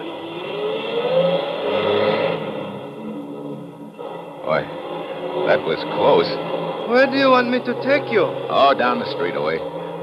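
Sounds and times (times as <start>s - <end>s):
truck engine revving and driving off: 0.0s - 10.0s
speech: 5.6s - 9.8s.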